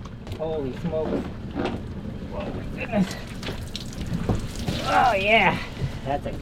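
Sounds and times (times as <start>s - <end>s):
speech: 0.4s - 3.7s, 4.8s - 6.3s
water dripping from a harvested branch coated with eggs hoisted into a boat: 3.0s - 6.0s.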